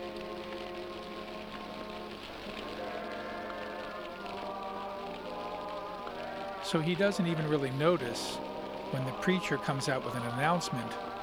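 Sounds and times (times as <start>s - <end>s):
steady rain pattering on a surface: 0.0s - 11.2s
sung hymn: 0.0s - 11.2s
speech: 6.7s - 11.2s.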